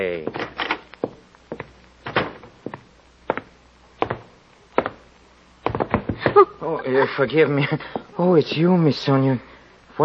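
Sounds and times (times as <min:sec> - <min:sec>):
scuffle of wooden thumps and knocks as a woman pushes someone out of a door: 0:00.3 - 0:06.4
speech: 0:07.0 - 0:10.0.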